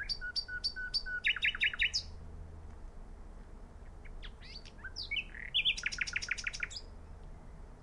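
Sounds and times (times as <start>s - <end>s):
common nightingale Luscinia megarhynchos singing: 0.0s - 2.2s, 3.8s - 7.8s.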